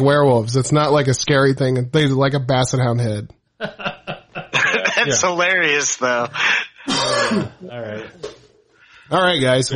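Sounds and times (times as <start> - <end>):
speech: 0.0 - 3.9, 5.0 - 8.4, 9.1 - 9.7
laughter: 3.6 - 5.4
throat clearing: 6.9 - 7.6.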